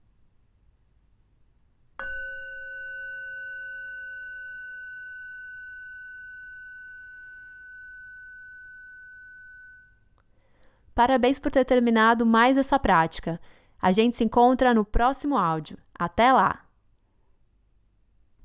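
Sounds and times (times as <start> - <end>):
meditation bell ringing: 2.0 - 10.4
speech: 11.0 - 16.6.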